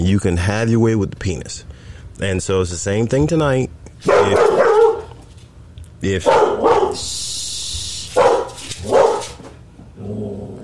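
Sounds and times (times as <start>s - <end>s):
speech: 0.0s - 4.7s, 6.0s - 7.2s
dog barking loudly: 4.0s - 5.2s, 6.2s - 7.2s, 8.0s - 9.5s
high hissing whine: 6.9s - 8.8s.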